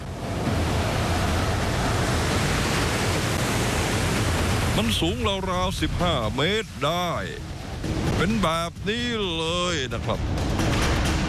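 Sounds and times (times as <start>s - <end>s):
huge tsunami waves breaking in Japan: 0.0s - 11.2s
speech: 4.8s - 10.6s.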